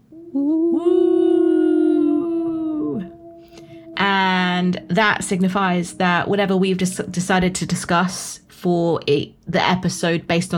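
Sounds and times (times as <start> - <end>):
wolf howl: 0.0 - 7.6
speech: 5.0 - 10.5.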